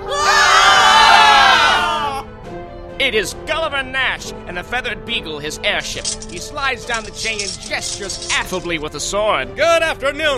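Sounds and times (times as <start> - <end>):
crowd of investors screaming in alarm: 0.0 - 2.2
speech: 3.1 - 10.3.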